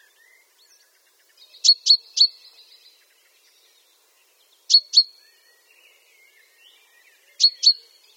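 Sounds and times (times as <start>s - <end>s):
chaffinch Fringilla coelebs calls: 1.6s - 2.8s, 4.7s - 5.2s, 7.4s - 8.1s.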